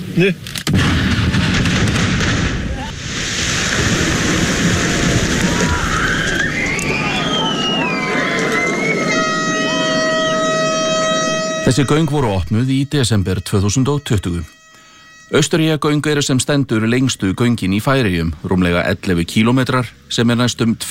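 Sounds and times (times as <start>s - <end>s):
speech: 0.2s - 0.9s, 11.7s - 14.6s, 15.3s - 20.8s
first blasting explosion in subsea tunnel construction in the Faroe Islands: 0.7s - 6.8s
whistles: 5.4s - 12.2s, 14.0s - 15.4s
tonal horn-like sounds: 5.8s - 17.7s.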